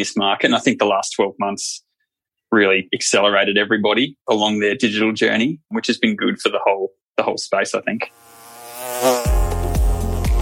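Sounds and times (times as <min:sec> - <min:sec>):
speech: 0:00.0 - 0:01.9, 0:02.5 - 0:08.3
bees buzzing: 0:08.1 - 0:10.3.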